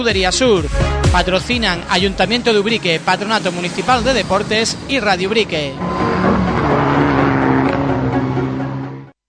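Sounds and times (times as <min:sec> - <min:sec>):
speech: 0:00.0 - 0:05.9
rally car engine roaring and revving with gear changes at a rally event: 0:02.3 - 0:09.2.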